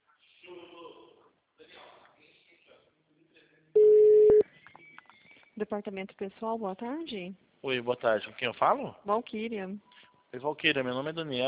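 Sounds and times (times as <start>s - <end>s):
soft indistinct voices: 0.0s - 5.6s
telephone tone on a call to a company's HR department: 3.8s - 4.4s
speech: 5.6s - 11.4s.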